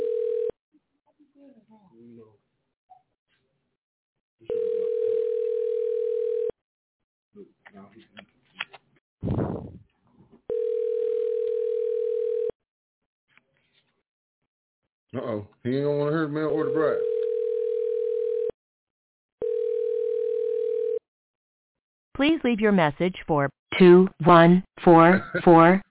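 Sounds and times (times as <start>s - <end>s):
telephone ring-back tone: 0.0s - 0.6s, 4.5s - 6.5s, 10.5s - 12.5s, 16.5s - 18.5s, 19.4s - 21.0s
speech: 15.6s - 17.1s, 22.2s - 25.8s.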